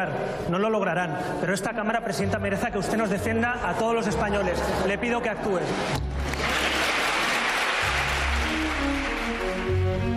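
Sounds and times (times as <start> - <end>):
speech: 0.0 - 6.2
applause in a parliamentary chamber: 6.2 - 10.1.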